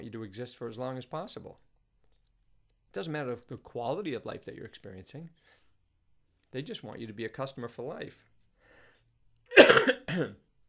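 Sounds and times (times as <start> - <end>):
speech: 0.1 - 1.7, 2.9 - 5.6, 6.5 - 8.3, 9.6 - 10.4
person coughing: 9.5 - 10.4.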